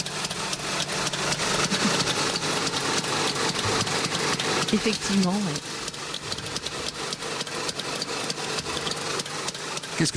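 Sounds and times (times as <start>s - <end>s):
Trabant two-stroke car engine idling: 0.0s - 10.1s
speech: 4.7s - 5.8s, 10.0s - 10.1s.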